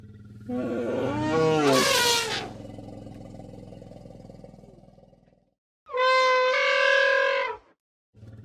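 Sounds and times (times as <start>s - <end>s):
elephant trumpeting: 0.5s - 2.6s, 5.9s - 7.6s.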